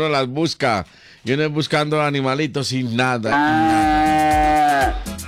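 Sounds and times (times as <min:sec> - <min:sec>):
speech: 0:00.0 - 0:04.2
cow mooing: 0:03.3 - 0:05.0.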